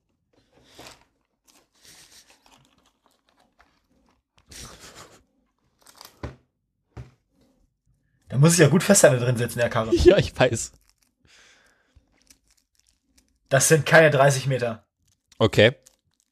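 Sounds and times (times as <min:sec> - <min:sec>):
chocolate praline wrapper crinkling and tearing: 0:00.6 - 0:04.5, 0:05.6 - 0:06.3, 0:10.4 - 0:14.3, 0:15.0 - 0:16.2
crunchy bites of a chocolate praline: 0:00.6 - 0:04.8, 0:10.0 - 0:13.6, 0:15.0 - 0:16.2
speech: 0:08.4 - 0:10.8, 0:13.5 - 0:15.9
laughter: 0:09.8 - 0:10.4.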